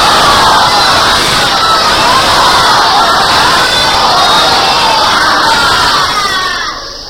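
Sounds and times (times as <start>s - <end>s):
large crowd loudly chanting the salawat religious blessing: 0.0s - 7.0s.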